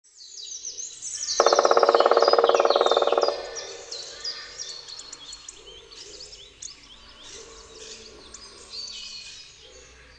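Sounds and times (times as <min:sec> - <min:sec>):
chorus of high twittering songbirds: 0:00.1 - 0:10.1
black woodpecker drumming: 0:01.4 - 0:05.1.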